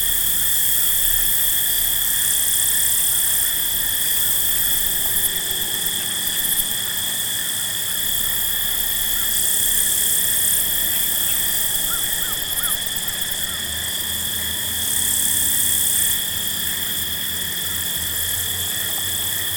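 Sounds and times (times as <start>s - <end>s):
field crickets chirping chorus at night: 0.0s - 19.5s
soft chirping notes from another animal: 10.9s - 13.7s.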